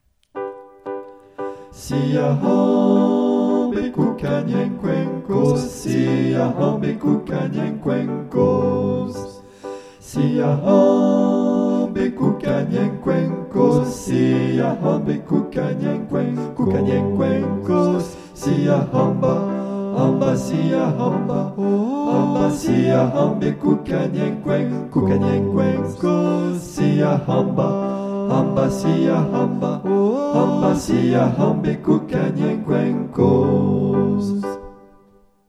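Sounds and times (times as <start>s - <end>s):
everyone singing a chant: 1.8s - 34.7s.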